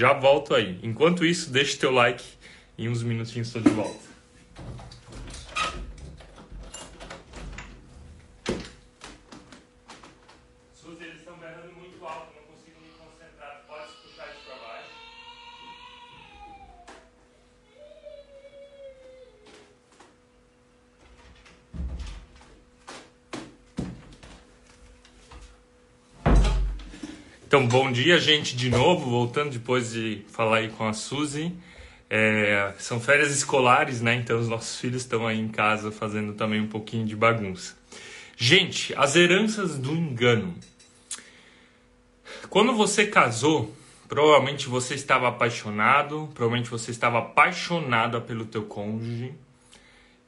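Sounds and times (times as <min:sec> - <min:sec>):
speech: 0:00.0 - 0:04.8, 0:27.6 - 0:40.7, 0:42.5 - 0:49.4
door creaking: 0:04.6 - 0:10.4, 0:26.2 - 0:29.1
door banging shut: 0:21.7 - 0:22.4, 0:26.2 - 0:26.9
knocks and thuds of a door being handled: 0:21.7 - 0:22.4.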